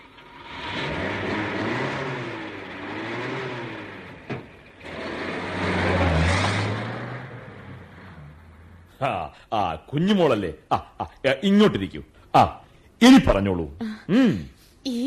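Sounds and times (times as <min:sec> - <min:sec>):
car engine revving as it pulls away: 0:00.0 - 0:09.0
speech: 0:09.0 - 0:15.0.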